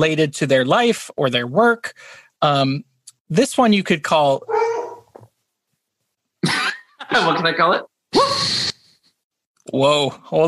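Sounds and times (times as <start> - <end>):
speech: 0.0 - 4.5, 6.4 - 8.6, 9.6 - 10.4
dog barking: 4.5 - 5.1.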